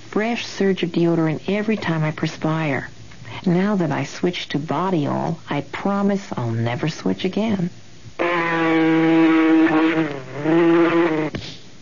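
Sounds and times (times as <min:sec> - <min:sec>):
speech: 0:00.2 - 0:07.8
mosquito buzzing in a steady droning whine: 0:08.2 - 0:11.4.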